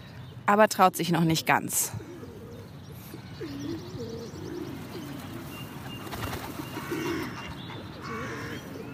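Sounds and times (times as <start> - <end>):
speech: 0.5 - 2.1
pigeons cooing: 2.0 - 8.9.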